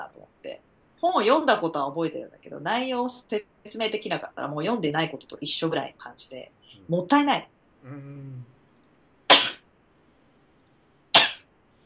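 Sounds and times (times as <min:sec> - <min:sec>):
speech: 0:00.1 - 0:08.5
short voiced intake-like sound: 0:07.8 - 0:08.5
person sneezing sharply and loudly: 0:09.3 - 0:09.6, 0:11.2 - 0:11.4.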